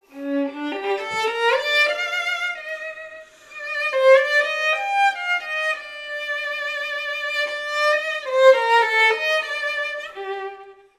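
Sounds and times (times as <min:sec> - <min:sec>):
violin: 0:00.0 - 0:10.9.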